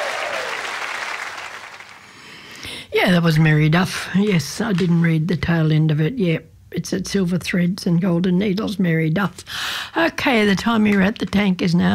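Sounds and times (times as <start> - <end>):
audience applause: 0.0 - 2.2
speech: 2.9 - 11.9.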